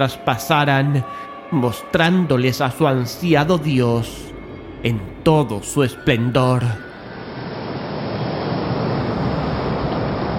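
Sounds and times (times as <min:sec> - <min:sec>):
speech: 0:00.0 - 0:06.9
wind noise: 0:06.8 - 0:10.3
rough sea waves crashing: 0:07.0 - 0:10.3.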